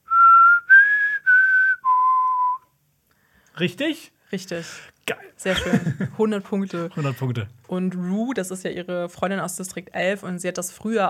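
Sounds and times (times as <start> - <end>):
person whistling a short bird-call tune: 0.0 - 2.7
speech: 3.6 - 11.0
laughter: 5.5 - 7.4.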